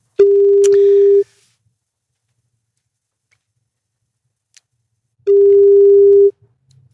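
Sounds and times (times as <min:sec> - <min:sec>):
telephone ringing tone as a number is called: 0:00.2 - 0:01.2, 0:05.3 - 0:06.3.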